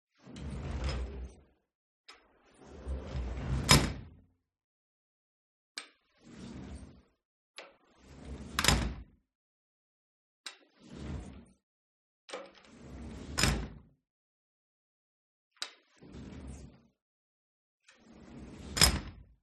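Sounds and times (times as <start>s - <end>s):
metal sliding door in a living room opening and soft closing: 0.2s - 1.5s, 2.2s - 4.2s, 6.2s - 7.0s, 8.0s - 9.1s, 10.8s - 11.4s, 12.3s - 13.8s, 16.0s - 16.7s, 17.9s - 19.3s.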